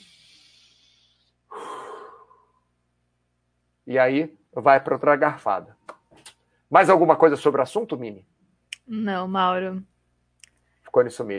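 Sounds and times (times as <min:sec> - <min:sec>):
deep breath: 0:00.0 - 0:02.7
speech: 0:03.9 - 0:05.8, 0:06.7 - 0:08.3, 0:08.9 - 0:09.9, 0:10.9 - 0:11.3.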